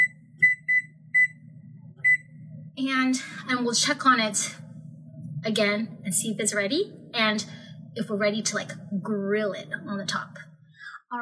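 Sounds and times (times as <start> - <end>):
kitchen timer beeping while being set: 0.0 - 1.3
steady low hum: 0.0 - 11.1
speech: 2.8 - 4.6, 5.4 - 10.5.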